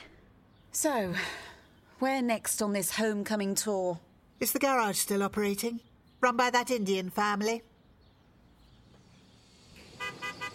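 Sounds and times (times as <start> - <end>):
speech: 0.8 - 1.4, 2.0 - 7.7
cab car horn toots outdoors: 9.9 - 10.5.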